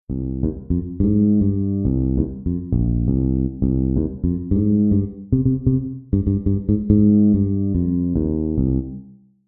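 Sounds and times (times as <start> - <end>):
jazz composition: 0.1 - 9.0.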